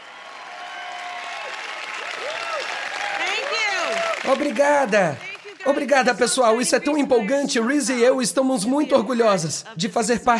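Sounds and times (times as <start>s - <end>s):
crowd cheering, shouting and whistling: 0.0s - 5.9s
large crowd applauding at a presentation: 0.0s - 7.6s
speech: 4.2s - 10.3s.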